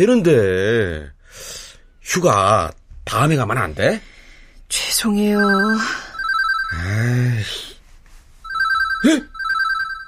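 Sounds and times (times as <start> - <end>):
speech: 0.0 - 4.1, 4.7 - 6.1, 6.7 - 7.7, 9.0 - 9.3
telephone ringing with a steady electronic trill: 5.4 - 6.9, 8.4 - 10.0
person groaning: 6.8 - 7.5.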